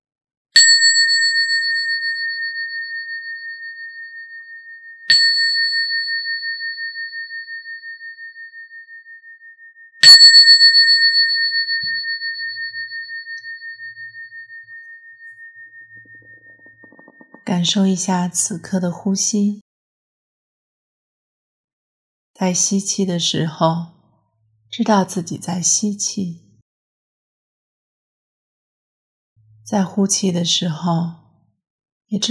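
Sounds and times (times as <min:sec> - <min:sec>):
meditation bell being struck: 0:00.6 - 0:18.8
speech: 0:17.5 - 0:19.6, 0:22.4 - 0:24.0, 0:24.7 - 0:26.4, 0:29.7 - 0:31.2, 0:32.1 - 0:32.2.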